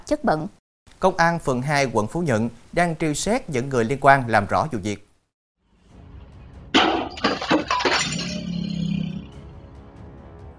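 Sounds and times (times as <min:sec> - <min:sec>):
speech: 0:00.1 - 0:05.1
glass window shattering: 0:06.8 - 0:09.3
glass shards tinkling and scattering: 0:07.0 - 0:09.1.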